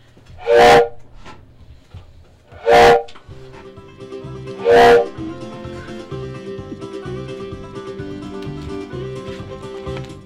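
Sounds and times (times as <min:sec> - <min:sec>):
train whistle blasts: 0:00.4 - 0:01.0, 0:02.6 - 0:03.2, 0:04.5 - 0:05.3.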